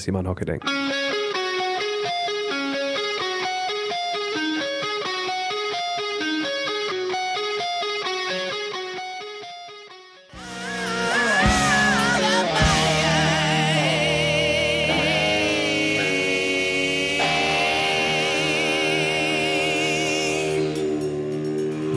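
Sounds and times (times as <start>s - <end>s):
speech: 0.0s - 1.0s
bright repeating guitar riff: 0.6s - 21.9s
hard rock song: 0.6s - 21.9s
drums: 10.4s - 21.9s.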